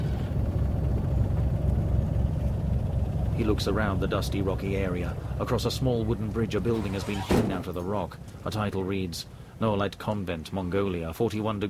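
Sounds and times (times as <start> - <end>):
helicopter rotor thrumming as it flies off after setting down a car: 0.0 - 8.6
speech: 3.4 - 11.6.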